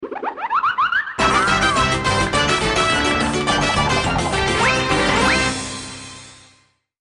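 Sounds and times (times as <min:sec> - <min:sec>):
cartoon alert: 0:00.3 - 0:05.8.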